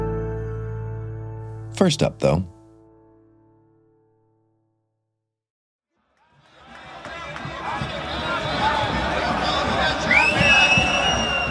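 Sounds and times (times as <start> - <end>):
speech: 1.8 - 2.6
crowd babble in city streets of Vienna: 6.2 - 11.4
high whistle-like tones: 10.1 - 11.4.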